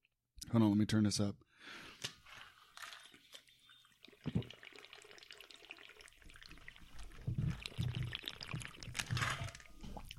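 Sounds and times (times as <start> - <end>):
speech: 0.5 - 2.1
water sloshing inside a water bottle: 2.2 - 10.1.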